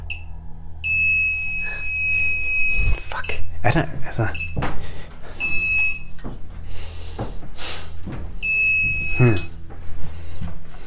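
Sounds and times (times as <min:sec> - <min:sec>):
hidden microphone detector beep: 0:00.0 - 0:03.5, 0:04.3 - 0:04.6, 0:05.4 - 0:06.1, 0:08.4 - 0:09.6
hidden microphone detector steady piercing tone: 0:00.0 - 0:03.5, 0:08.4 - 0:09.6
low hum: 0:00.0 - 0:10.8
speech: 0:03.2 - 0:04.8, 0:09.2 - 0:09.5.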